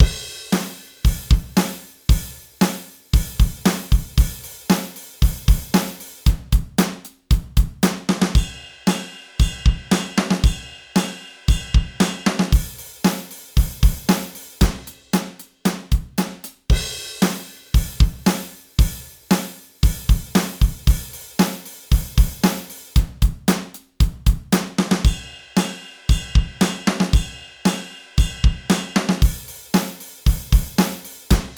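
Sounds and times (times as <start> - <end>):
wet drums: 0.0 - 31.5.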